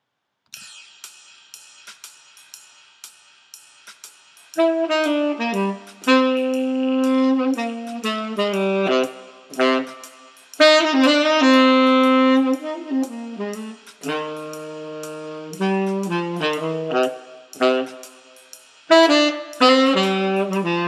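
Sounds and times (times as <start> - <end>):
tenor sax playing jazz swing: 4.6 - 20.8.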